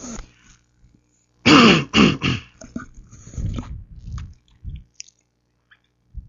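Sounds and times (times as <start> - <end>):
wet throat clearing from a person whose voice is failing: 1.5 - 3.0.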